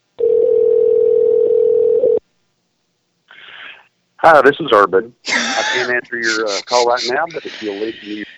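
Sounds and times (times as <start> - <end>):
telephone ringback tone on an outgoing call: 0.2 - 2.2
speech: 4.2 - 8.3
laughter: 5.2 - 8.3.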